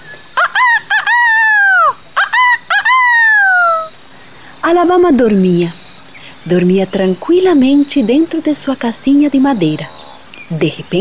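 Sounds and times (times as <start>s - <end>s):
rooster crowing: 0.3s - 3.9s
speech: 4.7s - 5.8s, 6.4s - 10.9s.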